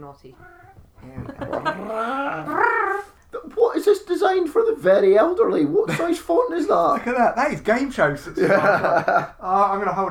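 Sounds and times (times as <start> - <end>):
speech: 0.0 - 10.1
cat meowing loudly: 0.3 - 3.2
laughter: 1.0 - 2.6, 8.4 - 10.1.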